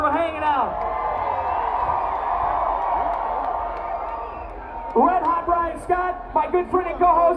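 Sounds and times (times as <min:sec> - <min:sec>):
large live crowd cheering: 0:00.4 - 0:05.9
speech: 0:05.9 - 0:07.3.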